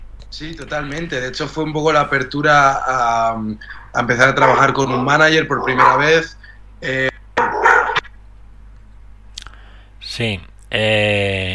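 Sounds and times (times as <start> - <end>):
quiet hum: 0.0 - 11.5
speech: 0.3 - 7.1, 10.2 - 11.5
dog barking: 4.3 - 6.3, 7.4 - 8.1.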